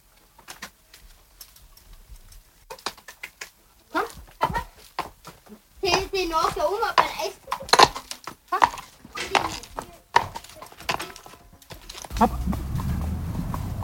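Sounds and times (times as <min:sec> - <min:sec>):
carriage horse hooves clip-clopping at a walk: 0:00.0 - 0:13.8
person talking: 0:05.8 - 0:11.2, 0:12.1 - 0:12.9
low rumble: 0:12.1 - 0:13.8.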